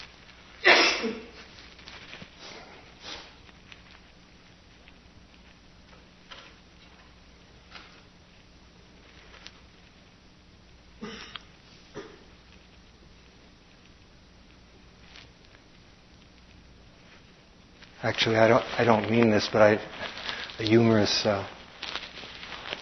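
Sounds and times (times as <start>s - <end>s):
small rustles from the audience: 0.0s - 22.8s
audience and speaker coughing at a talk on full awareness of breathing: 0.6s - 1.4s, 11.0s - 12.3s
speech: 18.0s - 21.6s.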